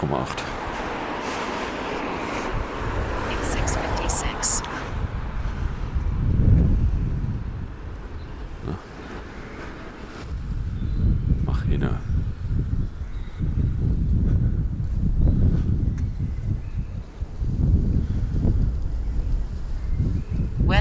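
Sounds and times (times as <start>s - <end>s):
gusty wind buffeting the microphone: 0.0s - 20.7s.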